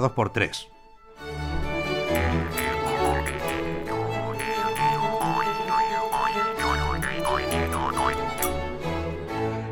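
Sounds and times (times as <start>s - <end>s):
speech: 0.0s - 0.7s
steady musical backing: 0.0s - 9.7s
springy boing-like plucked notes: 2.0s - 8.6s.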